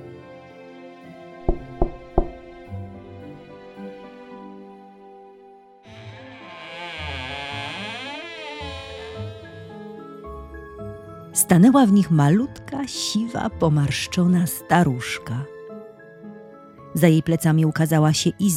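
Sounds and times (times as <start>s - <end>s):
soft music: 0.0s - 18.5s
knocking on a wooden door: 1.4s - 2.7s
speech: 11.4s - 15.5s, 17.0s - 18.5s.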